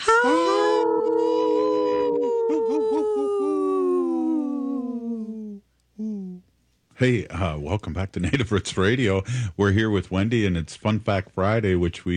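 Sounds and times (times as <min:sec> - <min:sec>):
wolves howling together in chorus: 0:00.0 - 0:05.2
speech: 0:00.1 - 0:00.4, 0:07.0 - 0:12.1.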